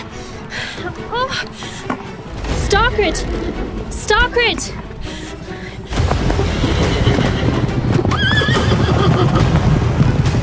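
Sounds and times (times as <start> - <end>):
speech: 0.8 - 5.2
giant horses charging at full speed in a stable: 1.3 - 10.4
horse shrill wavering whinny: 6.4 - 9.5.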